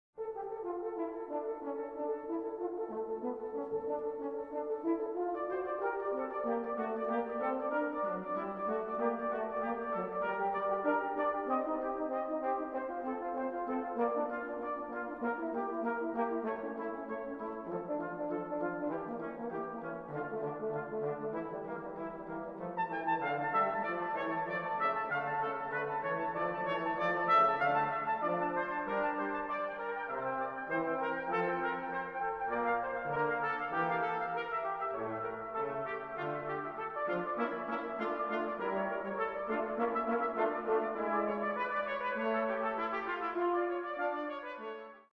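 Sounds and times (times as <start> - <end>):
brass ensemble playing a fugue in D minor: 0.2 - 45.1.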